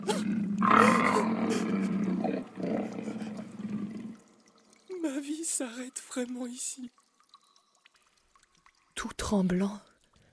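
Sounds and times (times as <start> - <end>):
lion roaring: 0.0 - 4.2
speech: 5.6 - 7.0, 9.3 - 9.9.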